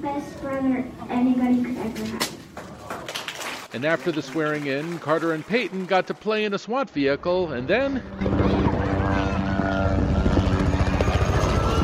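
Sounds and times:
speech: 0.0 - 2.4, 3.7 - 8.3
helicopter engine and rotor during a ride: 8.0 - 11.8.

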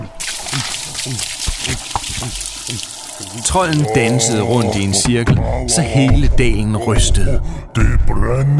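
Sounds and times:
wet liquid splashing: 0.2 - 4.9
gulping liquid from a canister: 0.2 - 5.8
speech: 3.5 - 8.5.

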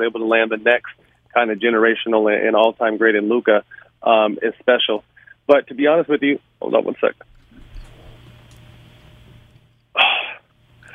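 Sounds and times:
speech: 0.0 - 7.3
quiet hum: 0.0 - 10.9
single sharp sneeze: 10.0 - 10.4
brief breathy sound: 10.0 - 10.9.

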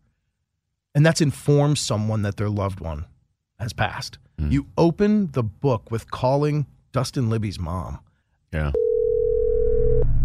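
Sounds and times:
speech: 1.0 - 8.9
telephone ringback tone on a call: 8.8 - 10.1.

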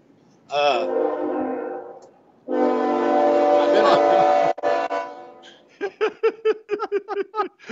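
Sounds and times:
train horn blasts: 0.8 - 5.6
laughter: 3.6 - 4.4, 5.7 - 7.7.

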